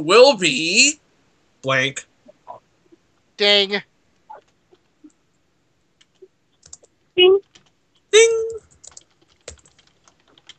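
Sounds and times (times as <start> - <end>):
speech: 0.0 - 1.0, 1.6 - 2.1, 3.4 - 3.9, 8.1 - 8.6
typing on a computer keyboard: 6.0 - 7.8, 8.4 - 10.5.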